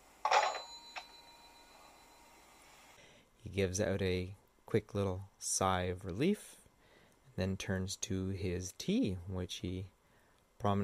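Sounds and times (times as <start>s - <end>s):
rotary phone bell ringing: 0.2s - 2.6s
rotary phone receiver dropped onto its cradle with clunk: 0.3s - 0.8s
speech: 3.5s - 6.6s, 7.4s - 10.0s, 10.6s - 10.8s.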